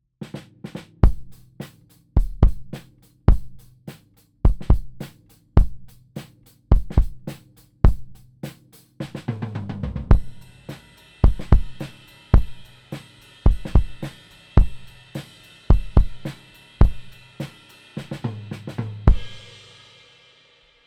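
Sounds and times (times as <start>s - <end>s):
full drum set kick recorded with Oktava microphone: 1.0s - 1.3s, 2.2s - 2.7s, 3.3s - 3.6s, 4.5s - 5.0s, 5.6s - 5.9s, 6.7s - 7.3s, 7.9s - 8.2s, 11.2s - 11.8s, 12.4s - 12.6s, 13.5s - 14.9s, 15.7s - 17.1s, 19.1s - 19.4s.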